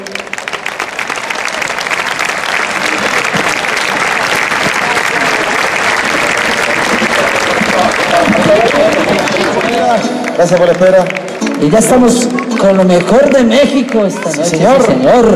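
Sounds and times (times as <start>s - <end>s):
audience applause from a large crowd: 0.0s - 15.3s
laughter: 2.6s - 13.6s
speech: 10.4s - 15.3s.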